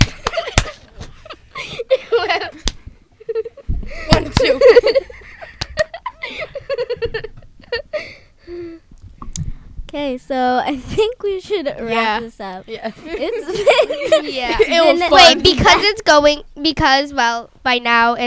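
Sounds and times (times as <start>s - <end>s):
sharp slaps: 0.0s - 1.1s, 2.6s - 2.9s, 4.1s - 4.7s, 5.6s - 5.8s
giggling and laughter: 0.0s - 8.2s, 12.8s - 16.0s
speech: 10.3s - 18.2s.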